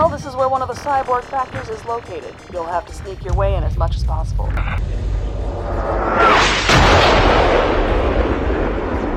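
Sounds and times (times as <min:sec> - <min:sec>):
speech: 0:00.1 - 0:06.8
loud explosion with rumbling debris: 0:04.6 - 0:09.1.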